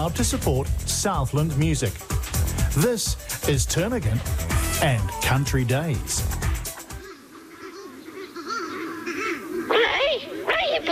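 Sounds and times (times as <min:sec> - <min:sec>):
speech: 0:00.0 - 0:06.4
flock of mutton birds calling on the road: 0:04.0 - 0:10.9.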